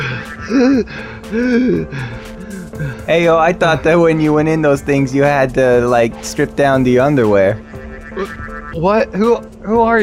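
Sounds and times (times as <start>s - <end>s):
voice imitating a person gasping and struggling for breath: 0.0s - 3.1s
speech: 0.5s - 10.0s.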